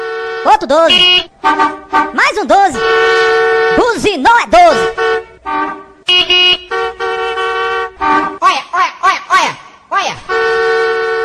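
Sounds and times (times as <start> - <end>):
loud vehicle horn honking: 0.0 - 4.0, 4.6 - 8.5, 10.2 - 11.2
speech: 0.4 - 6.4.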